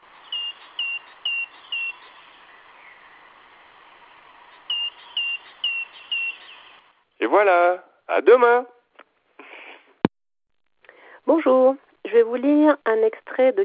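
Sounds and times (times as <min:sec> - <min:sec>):
faint hiss: 0:00.0 - 0:13.6
great tit singing: 0:00.1 - 0:03.4, 0:04.4 - 0:06.8
speech: 0:07.2 - 0:08.7, 0:11.3 - 0:13.6.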